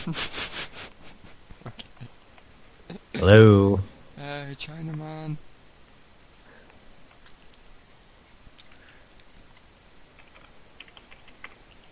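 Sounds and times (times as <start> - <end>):
speech: 0.0 - 0.5, 3.2 - 3.9, 4.5 - 5.5
steady hiss: 0.0 - 11.9
faint typing on a computer keyboard: 10.2 - 11.9.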